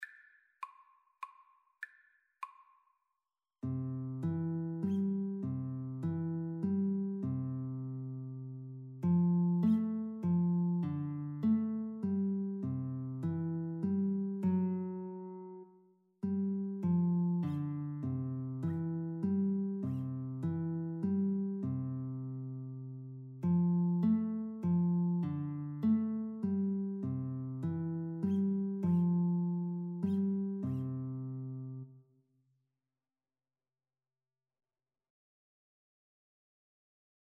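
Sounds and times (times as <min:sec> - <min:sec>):
guitar duet playing a Christmas carol: 0:03.7 - 0:15.6, 0:16.3 - 0:31.9.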